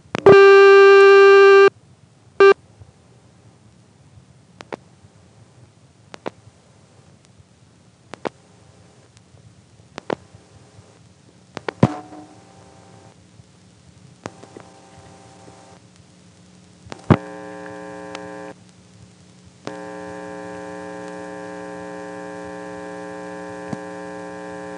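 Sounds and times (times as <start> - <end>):
telephone line ring signal after dialing: 0.3 - 1.7
faint scattered clicks: 6.1 - 6.4, 8.1 - 8.4, 10.0 - 10.2, 12.6 - 21.4, 23.5 - 24.0.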